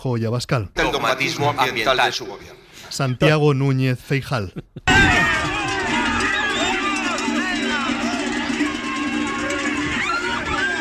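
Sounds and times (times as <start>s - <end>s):
speech: 0.0s - 5.4s
laughter: 4.3s - 8.8s
crowd roaring at a farmers' protest in Oviedo Spain: 4.9s - 10.8s
overlapping shouts and voices at a farmers' protest: 4.9s - 10.8s.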